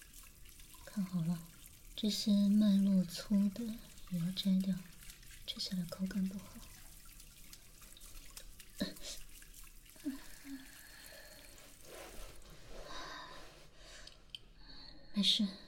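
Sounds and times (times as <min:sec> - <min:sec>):
tap water running into a sink while rinsing leafy greens: 0:00.0 - 0:12.4
speech: 0:01.0 - 0:04.9, 0:05.5 - 0:06.8, 0:15.2 - 0:15.6.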